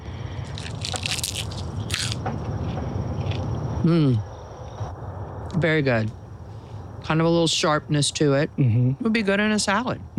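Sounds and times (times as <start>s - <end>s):
low noise: 0.0s - 10.1s
biting into a freshly picked crisp springy vegetable crop: 0.3s - 4.1s
speech: 3.8s - 4.3s, 5.6s - 6.2s, 7.1s - 10.1s.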